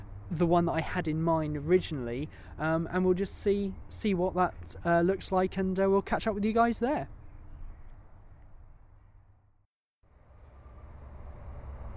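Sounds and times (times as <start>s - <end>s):
speech: 0.3s - 7.2s
train rumbling past: 10.1s - 11.9s.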